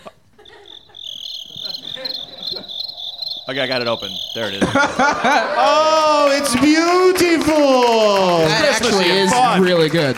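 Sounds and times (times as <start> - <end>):
laughter: 0.0 - 2.9, 4.4 - 9.7
cricket chirping: 0.0 - 5.4
speech: 3.5 - 10.1.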